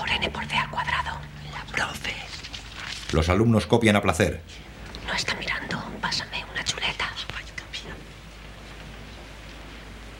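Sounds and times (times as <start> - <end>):
steady rain on a deserted sports court: 0.0 - 10.1
speech: 3.1 - 4.7.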